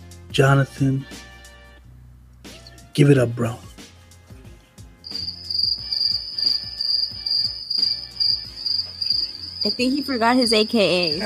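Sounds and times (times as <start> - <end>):
speech: 0.4 - 1.2, 3.0 - 3.7, 9.6 - 11.2
crickets chirping: 5.0 - 11.2.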